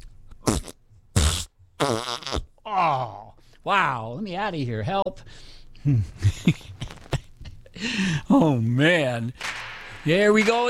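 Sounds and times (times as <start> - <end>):
buzzy fart sounds played as a gag in a studio: 0.4 - 2.6
speech: 1.8 - 2.4, 3.6 - 6.7, 7.8 - 10.6.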